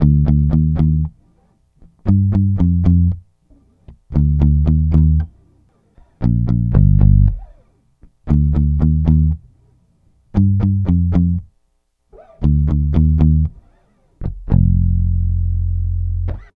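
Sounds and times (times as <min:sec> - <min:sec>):
electric bass loop in B flat: 0:00.0 - 0:01.2, 0:02.0 - 0:03.2, 0:04.1 - 0:05.4, 0:06.0 - 0:07.6, 0:08.3 - 0:09.5, 0:10.3 - 0:11.5, 0:12.2 - 0:16.5.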